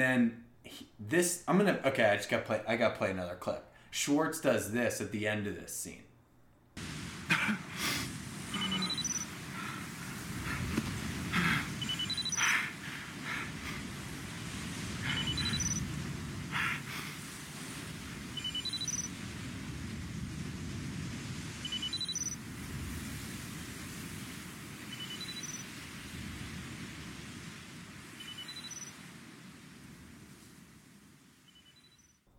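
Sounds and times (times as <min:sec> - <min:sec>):
speech: 0:00.0 - 0:06.1
ocean waves lapping on a beach: 0:06.8 - 0:32.1
faint chirps: 0:08.5 - 0:09.4, 0:11.8 - 0:12.7, 0:15.0 - 0:15.9, 0:18.4 - 0:19.1, 0:21.6 - 0:22.4, 0:24.9 - 0:25.7, 0:28.2 - 0:29.0, 0:31.4 - 0:32.2.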